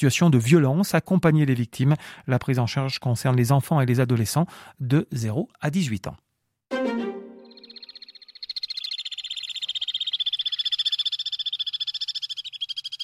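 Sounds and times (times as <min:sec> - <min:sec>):
speech: 0:00.0 - 0:06.2
brief lower sound: 0:06.7 - 0:07.8
Alpine swifts giving long fast trilling calls: 0:07.4 - 0:13.0.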